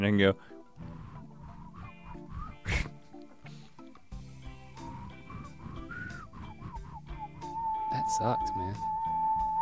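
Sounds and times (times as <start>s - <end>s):
speech: 0.0s - 0.5s, 8.1s - 8.9s
person whistling short high-pitched notes: 1.4s - 3.0s, 4.8s - 9.6s.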